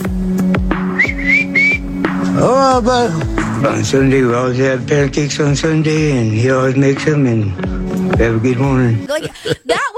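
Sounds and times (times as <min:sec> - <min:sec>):
man giving short rising whistles to call someone: 0:00.8 - 0:02.0
speech: 0:02.4 - 0:09.9
laughter: 0:09.1 - 0:09.9.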